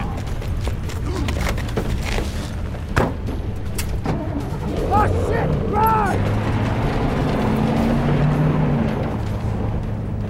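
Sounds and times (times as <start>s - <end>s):
broadband road noise: 0.0s - 10.2s
truck engine droning on the move: 3.4s - 10.2s.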